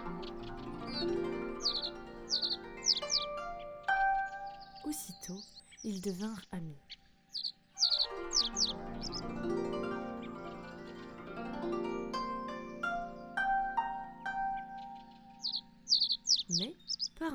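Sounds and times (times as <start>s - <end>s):
small bird chirping and trilling: 0.0s - 9.2s, 14.5s - 17.3s
soft musical backdrop: 0.0s - 17.3s
speech: 5.8s - 6.9s.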